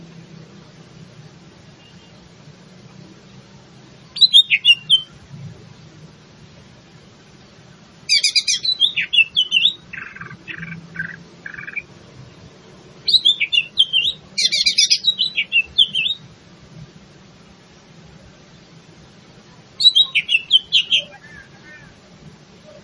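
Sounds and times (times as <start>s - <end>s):
greater green leafbird singing in full song: 3.9s - 5.2s, 8.0s - 16.3s, 19.6s - 22.8s.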